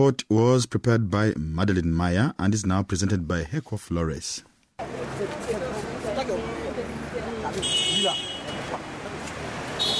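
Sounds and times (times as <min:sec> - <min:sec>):
speech: 0:00.0 - 0:05.0
steady rumble of engines and passing vehicles in Abidjan city traffic: 0:04.8 - 0:09.9.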